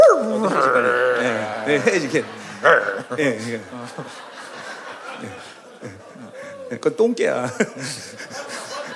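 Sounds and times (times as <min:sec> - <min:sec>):
person imitating German shepherd dogs barking: 0:00.0 - 0:01.7, 0:02.6 - 0:03.1
person imitating howling: 0:00.0 - 0:01.9
laughter: 0:00.4 - 0:08.9
speech: 0:01.7 - 0:04.3, 0:05.2 - 0:05.5, 0:06.7 - 0:08.4.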